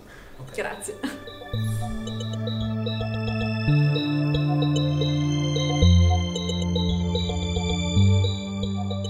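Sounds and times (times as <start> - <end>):
speech: 0.4 - 3.0
synth-driven song with bass line and bright effected lead: 0.6 - 9.0.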